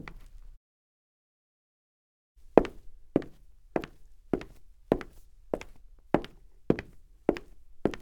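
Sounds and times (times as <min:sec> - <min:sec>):
foley footsteps on wood parquet: 0:02.6 - 0:08.0.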